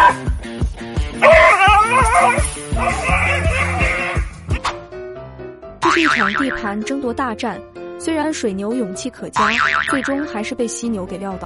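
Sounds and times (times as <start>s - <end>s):
dog yelping in pain: 1.2s - 4.2s
speech: 6.0s - 11.4s.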